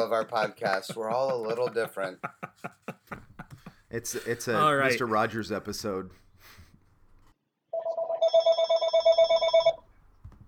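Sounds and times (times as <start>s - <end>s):
speech: 0.0s - 3.2s, 3.9s - 6.6s
laughter: 0.0s - 5.2s
telephone ringing with electronic trill: 7.8s - 9.8s.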